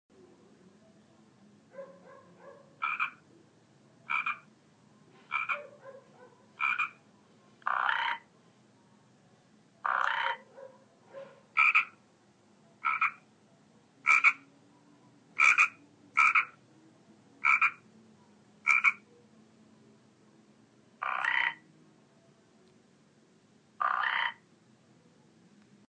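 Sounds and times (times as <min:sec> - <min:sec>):
Rana frog croaking: 0:02.8 - 0:03.2, 0:04.0 - 0:04.5, 0:05.3 - 0:05.6, 0:06.6 - 0:07.0, 0:07.6 - 0:08.3, 0:09.8 - 0:10.5, 0:11.6 - 0:12.0, 0:12.8 - 0:13.2, 0:14.0 - 0:14.5, 0:15.4 - 0:16.6, 0:17.4 - 0:17.8, 0:18.6 - 0:19.1, 0:21.0 - 0:21.6, 0:23.8 - 0:24.5.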